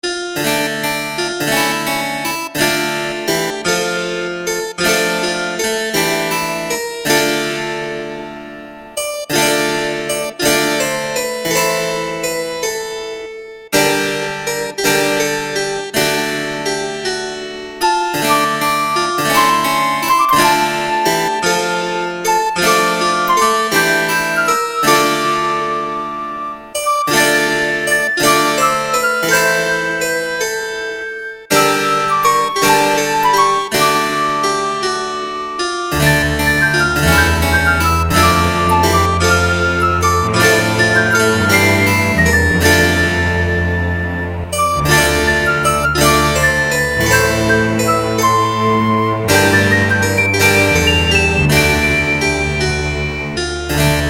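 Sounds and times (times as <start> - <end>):
harpsichord: 0.0 - 54.0
strings: 0.0 - 54.0
flute: 17.8 - 29.9, 31.0 - 34.7, 36.0 - 53.6.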